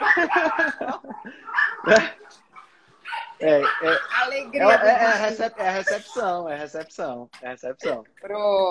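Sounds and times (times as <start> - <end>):
laughter: 0.0 - 2.2
several dogs barking and yelping excitedly: 0.0 - 6.4, 7.8 - 8.2
speech: 1.8 - 2.2, 3.6 - 8.6.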